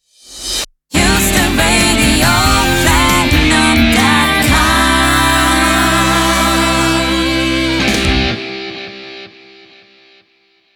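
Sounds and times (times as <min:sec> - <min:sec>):
radio jingle sting: 0:01.0 - 0:08.6.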